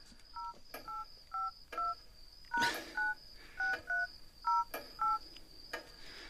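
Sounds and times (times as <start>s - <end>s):
steady high hiss: 0.0s - 6.2s
cellphone keypad dual-tone beeps entering a PIN: 0.4s - 5.2s.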